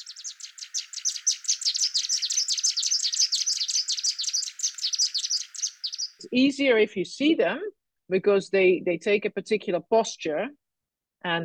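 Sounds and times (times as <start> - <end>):
pair of purple-crowned fairy-wrens singing a duet: 0.0 - 6.5
speech: 6.2 - 10.6, 11.2 - 11.4.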